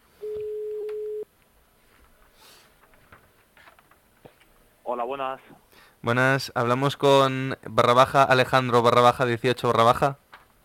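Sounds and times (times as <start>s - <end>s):
telephone ringing tone while a call is dialled: 0.2s - 1.2s
speech: 4.9s - 10.2s.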